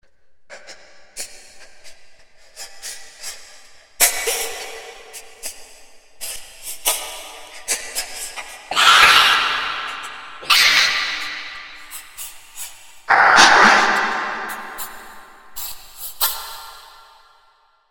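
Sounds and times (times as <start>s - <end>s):
person crying and screaming: 8.7s - 11.7s, 13.1s - 15.0s.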